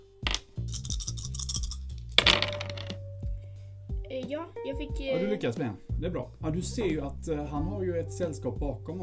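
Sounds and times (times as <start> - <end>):
dice clattering onto a hard tabletop: 0.2 - 3.0
speech: 4.3 - 9.0.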